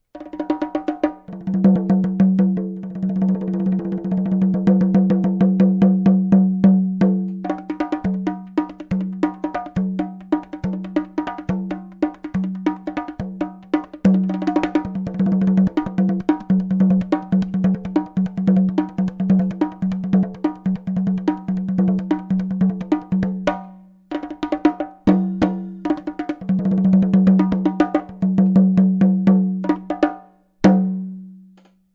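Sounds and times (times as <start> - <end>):
bongo drum: 0.1 - 31.7.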